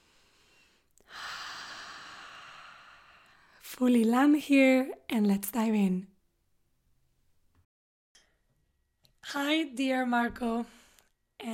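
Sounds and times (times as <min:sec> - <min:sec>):
deep breath in through the nose and out through the mouth: 0:00.0 - 0:03.5
speech: 0:03.7 - 0:06.1, 0:09.3 - 0:10.8.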